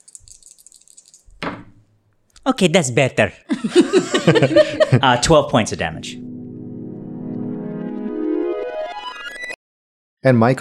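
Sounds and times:
dice rolled on a table rattling: 0.0 - 1.6
speech: 2.5 - 6.2, 10.2 - 10.6
laughter: 3.5 - 5.3.

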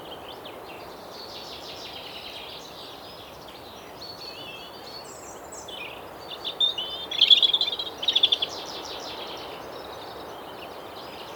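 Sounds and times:
European robin singing in a woodland clearing on a windy day: 6.6 - 8.5.

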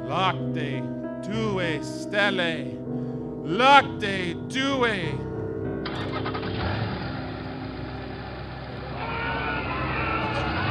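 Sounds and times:
speech: 0.1 - 5.3
Mercedes car engine cranking, idling and revving as the car drives off: 5.8 - 10.6.

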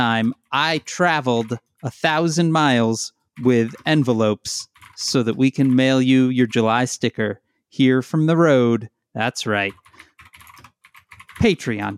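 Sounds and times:
keyboard typing: 0.0 - 2.8, 3.4 - 6.8, 9.6 - 11.9
speech: 0.0 - 9.8, 11.4 - 11.9.

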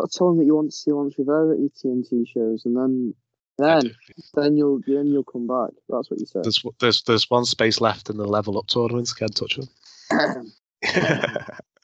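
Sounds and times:
speech: 0.0 - 11.7
laughter: 6.5 - 9.6, 10.8 - 11.6
rough throaty coughs: 10.1 - 11.6.

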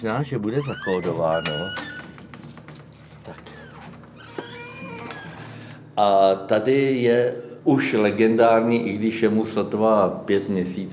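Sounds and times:
speech: 0.0 - 2.0, 6.0 - 10.9
keys jangling and scraping: 2.3 - 3.5.

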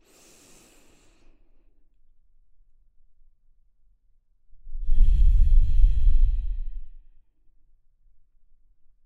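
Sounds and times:
slow breath in and out through the nose: 0.0 - 1.4, 4.8 - 7.0.

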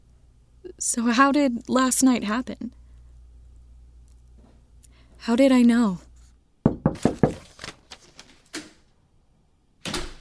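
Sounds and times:
speech: 0.8 - 2.8, 5.2 - 6.0
loud knocks on a door: 6.6 - 7.4
softer taps and thuds: 6.7 - 7.4.

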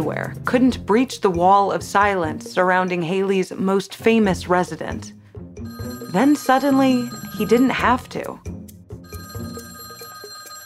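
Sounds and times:
speech: 0.0 - 5.2, 6.1 - 8.5
old-style telephone bell ringing: 5.7 - 8.1, 9.0 - 10.6.

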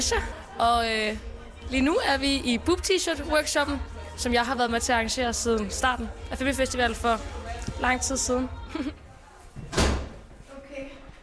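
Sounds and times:
speech: 0.0 - 9.0
faint murmur of voices: 0.0 - 11.2
laughter: 8.6 - 9.1
door swinging shut: 9.6 - 10.2.

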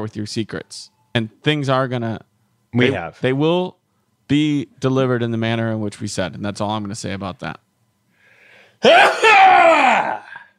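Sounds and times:
speech: 0.0 - 7.6, 8.8 - 9.3
loud forceful sneeze: 8.8 - 10.5.

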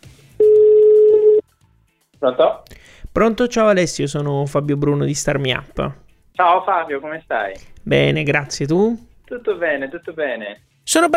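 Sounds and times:
telephone ringing tone before call answered: 0.4 - 1.4
speech: 2.2 - 11.1.

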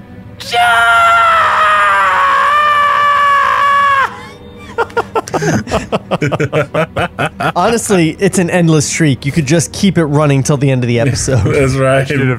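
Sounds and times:
person voicing a long piercing shriek: 0.4 - 4.8
speech: 0.5 - 0.8, 5.4 - 12.3
people talking and laughing: 4.7 - 8.5, 10.8 - 12.3.

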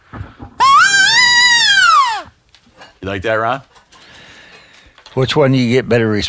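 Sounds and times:
hunting call imitating a wounded calf's distress bleat: 0.6 - 2.3
speech: 3.0 - 3.7, 5.2 - 6.2.

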